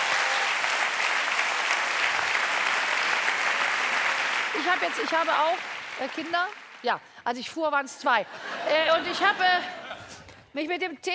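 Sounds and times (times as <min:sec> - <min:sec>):
audience applause: 0:00.0 - 0:07.0
laughter: 0:04.5 - 0:05.5, 0:08.2 - 0:10.4
speech: 0:04.6 - 0:09.8, 0:10.6 - 0:11.1.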